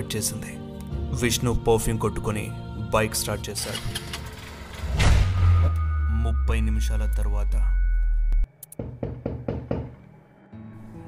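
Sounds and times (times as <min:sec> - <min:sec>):
speech: 0:00.0 - 0:04.1, 0:06.2 - 0:07.8
low hum: 0:04.4 - 0:08.5
knocking on a house door: 0:08.8 - 0:10.0.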